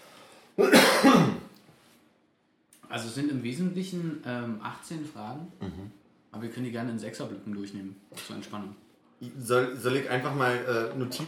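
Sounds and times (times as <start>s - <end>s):
short rough throat-clearing cough: 0.6s - 1.5s, 5.6s - 5.9s
speech: 3.0s - 11.2s.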